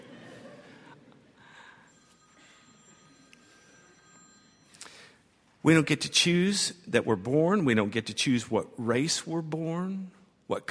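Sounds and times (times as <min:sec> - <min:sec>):
faint electronic telephone ringing: 0:01.5 - 0:05.4
speech: 0:05.6 - 0:10.6.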